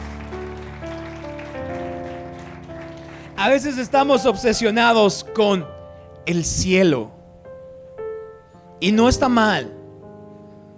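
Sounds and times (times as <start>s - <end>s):
crowd applauding loudly: 0.0s - 5.2s
held organ-like chords: 0.0s - 10.7s
speech: 3.4s - 7.2s, 8.8s - 9.8s.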